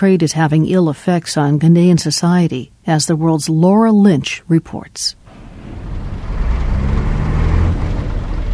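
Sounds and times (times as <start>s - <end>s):
speech: 0.0s - 5.2s
heavy truck traffic rumbling through a port city: 5.2s - 8.5s.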